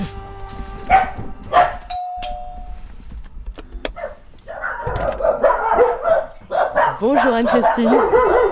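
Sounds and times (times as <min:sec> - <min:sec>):
dogs barking and yipping excitedly: 0:00.8 - 0:02.0, 0:03.8 - 0:08.4
two-tone ding-dong doorbell ringing at a home's front door: 0:01.9 - 0:02.9
speech: 0:07.3 - 0:08.4.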